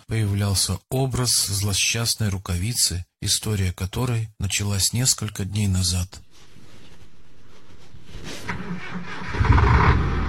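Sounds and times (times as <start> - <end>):
speech: 0.1 - 6.5
heavy dump truck engine revving up: 8.1 - 10.2.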